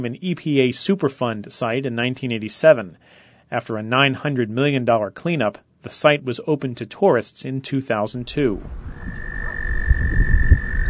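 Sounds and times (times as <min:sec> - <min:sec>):
speech: 0:00.0 - 0:09.2
frogs croaking in a native prairie: 0:08.8 - 0:10.8
steady high trill: 0:08.8 - 0:10.8.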